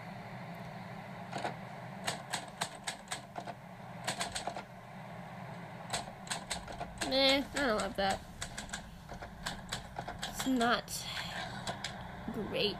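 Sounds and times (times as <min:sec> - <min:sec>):
steady low hum: 0:00.0 - 0:12.7
speech: 0:01.3 - 0:01.6, 0:07.1 - 0:08.3, 0:10.4 - 0:11.1, 0:12.4 - 0:12.7
typewriter keys clacking: 0:01.4 - 0:04.6, 0:05.9 - 0:10.7.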